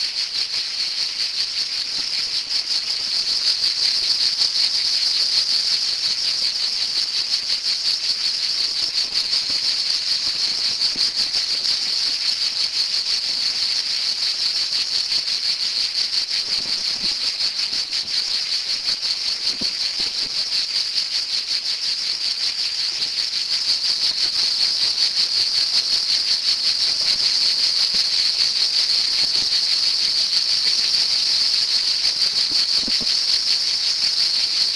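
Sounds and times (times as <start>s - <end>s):
cicada singing a steady high-pitched buzz: 0.0s - 34.7s.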